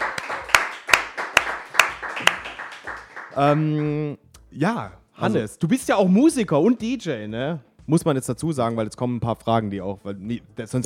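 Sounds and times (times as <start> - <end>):
crowd cheering: 0.0 - 3.9
crowd clapping in rhythm: 0.0 - 4.5
speech: 3.4 - 10.8.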